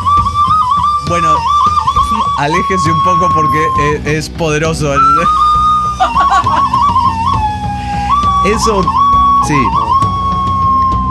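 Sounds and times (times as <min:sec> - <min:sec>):
skull-shaped whistle blown with fingers covering its eye holes: 0:00.0 - 0:04.2, 0:04.9 - 0:11.1
speech: 0:01.1 - 0:06.8, 0:08.4 - 0:09.8
people laughing: 0:06.0 - 0:07.2.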